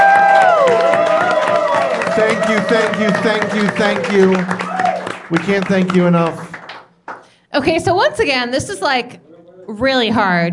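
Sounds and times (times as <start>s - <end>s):
loud crowd applauding and cheering with whoops and shouts: 0.0s - 7.4s
speech: 2.2s - 4.6s, 5.3s - 6.5s, 7.6s - 10.5s.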